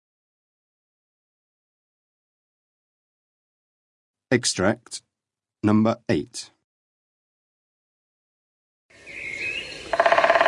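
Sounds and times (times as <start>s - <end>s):
speech: 4.3s - 6.6s
woodpecker beak drumming on wood: 9.7s - 10.4s.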